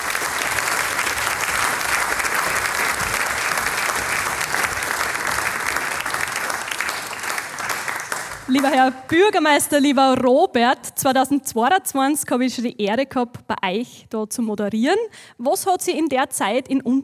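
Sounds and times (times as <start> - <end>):
large audience applause: 0.0 - 9.2
speech: 8.5 - 17.0.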